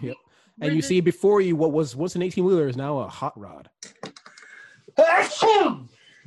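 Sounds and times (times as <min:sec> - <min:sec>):
speech: 0:00.0 - 0:04.0, 0:05.0 - 0:06.2
loud sneeze: 0:05.0 - 0:05.9.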